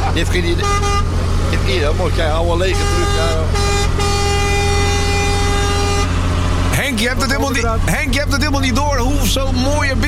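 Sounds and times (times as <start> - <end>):
low truck engine rumble: 0.0 - 10.0
speech: 0.2 - 3.8, 6.8 - 10.0
truck air horn blast from pipe mounted behind the cab: 0.6 - 1.2, 2.7 - 6.4.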